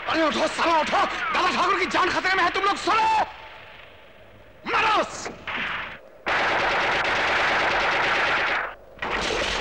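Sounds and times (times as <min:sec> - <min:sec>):
speech: 0:00.1 - 0:03.4, 0:04.7 - 0:05.4
rapid automatic gunfire from many shooters: 0:06.3 - 0:09.5.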